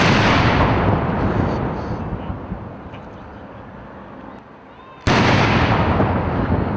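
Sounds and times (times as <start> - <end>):
horse artillery gun salute cannon booms in Hyde Park London: 0.0 - 1.8, 5.1 - 6.6.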